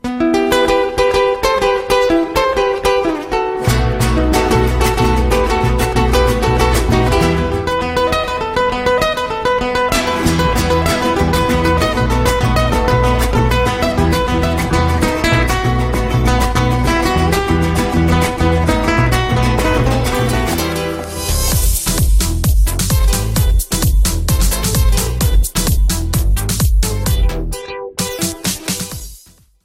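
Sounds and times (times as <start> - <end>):
guitar mix: 0.0 - 29.1.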